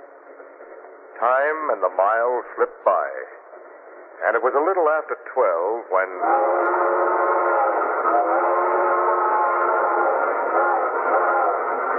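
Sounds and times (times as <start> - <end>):
speech: 1.2 - 3.4, 4.2 - 7.3
train whistle blowing for a water stop: 6.2 - 11.9.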